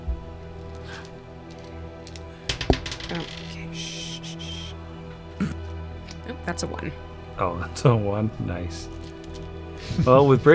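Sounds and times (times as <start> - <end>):
twenty-sided die clattering across a hard tabletop: 2.5 - 3.6
speech: 3.1 - 4.0, 6.4 - 9.0, 9.9 - 10.5.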